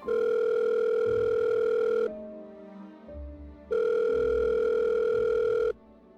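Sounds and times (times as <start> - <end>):
phone ringback tone of an unanswered call: 0.0 - 2.1, 3.7 - 5.8.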